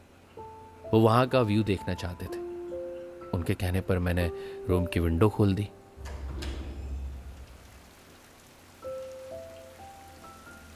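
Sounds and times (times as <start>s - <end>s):
light rain pattering outside a hotel: 0.0s - 10.7s
speech: 0.9s - 2.4s, 3.4s - 5.8s
low rumble: 6.0s - 8.0s
sharp water drip: 6.0s - 10.7s.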